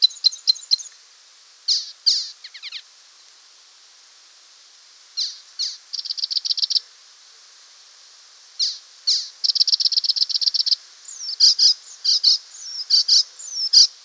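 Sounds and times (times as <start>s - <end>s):
Icterine warbler song with harsh notes, trills and slurred whistles: 0.0s - 1.0s, 1.7s - 2.9s, 5.2s - 6.8s, 8.6s - 14.0s.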